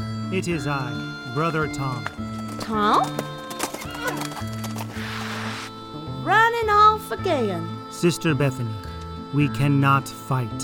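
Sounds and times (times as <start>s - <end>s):
speech: 0.3s - 3.3s, 6.2s - 10.6s
horse hooves clip-clopping: 1.9s - 5.7s
horse with a rider whinnying: 3.0s - 6.3s.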